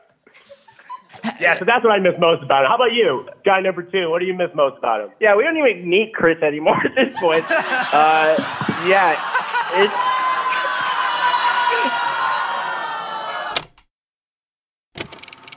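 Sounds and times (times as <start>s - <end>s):
laughter: 0.3s - 1.7s, 6.8s - 13.4s
speech: 1.3s - 10.1s
crowd noise: 7.1s - 13.6s
large live audience booing: 7.2s - 13.6s.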